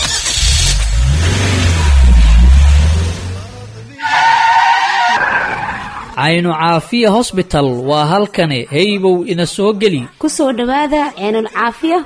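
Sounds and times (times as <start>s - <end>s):
car engine revving: 0.0s - 5.1s
car tires skidding: 0.2s - 6.2s
speech: 6.2s - 12.0s.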